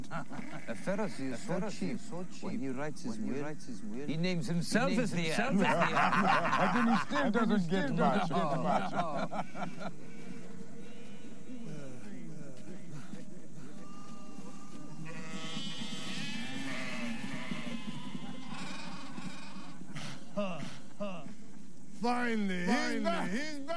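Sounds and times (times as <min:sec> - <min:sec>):
laughter: 0:00.0 - 0:03.6, 0:04.7 - 0:10.8, 0:11.5 - 0:23.7
speech: 0:00.1 - 0:10.2, 0:22.0 - 0:23.7
several sheep bleating: 0:13.8 - 0:19.9.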